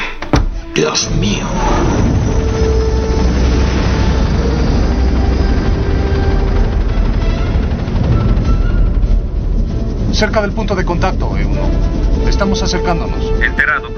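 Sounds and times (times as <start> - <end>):
speech: 0.8 - 2.1, 10.2 - 13.9
helicopter engines and rotor wash roaring: 1.0 - 13.9.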